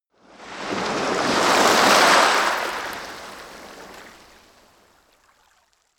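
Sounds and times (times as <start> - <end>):
soft surf on a coast: 0.2 - 4.9.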